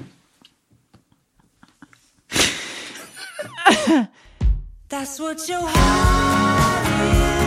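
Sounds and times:
person blowing nose: 2.3s - 3.1s
speech: 5.0s - 7.3s.

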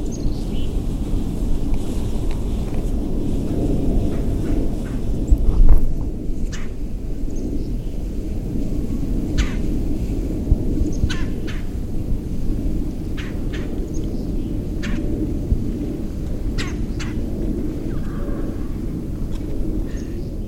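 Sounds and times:
loud low rumbling background: 0.0s - 20.4s
bird calls recorded outdoors while birding in Fargo: 6.4s - 7.7s, 9.4s - 9.7s, 10.9s - 11.8s, 13.2s - 15.0s, 16.6s - 17.2s, 17.8s - 18.8s.

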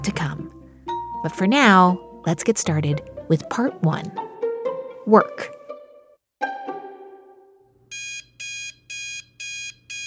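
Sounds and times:
speech: 1.2s - 4.3s, 5.1s - 5.6s
alarm clock short tone and ringing chime: 7.9s - 10.0s.

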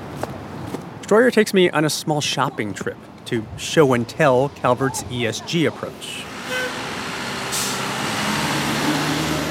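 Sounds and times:
street noise: 0.0s - 9.4s
speech: 1.1s - 6.3s
city bus diesel engine rumble: 2.9s - 9.4s
city bus air brakes hissing: 7.5s - 7.9s.

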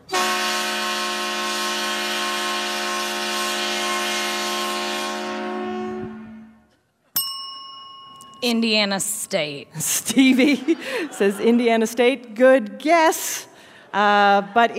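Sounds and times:
130-decibel train horn at a football stadium for a touchdown: 0.0s - 6.6s
short bright ding-like tone: 7.2s - 8.9s
speech: 8.4s - 14.7s
laughter: 9.7s - 12.2s.

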